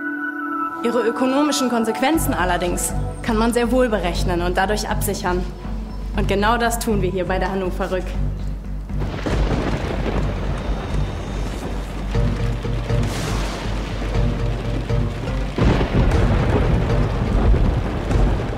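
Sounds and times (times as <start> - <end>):
speech: 0.8 - 8.4
hailstorm dense steady pattering: 9.0 - 18.5
thunder rumbling in a hailstorm: 9.0 - 18.5.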